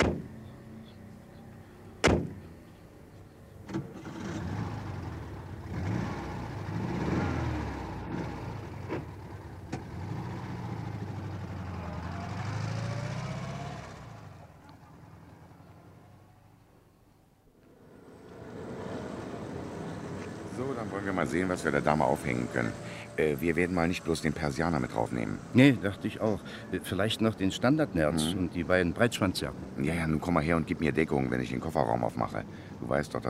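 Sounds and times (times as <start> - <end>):
car engine rumbling while driving off: 0.0 - 33.2
sharp thud: 2.0 - 2.4
speech: 20.7 - 33.2.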